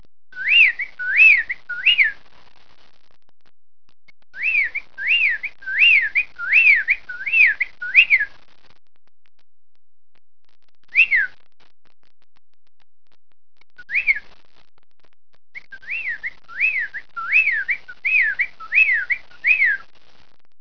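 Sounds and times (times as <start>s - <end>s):
bird whistling rising-and-falling whistles: 0.4s - 2.2s, 4.4s - 8.3s, 10.9s - 11.3s, 13.9s - 14.2s, 15.6s - 19.8s.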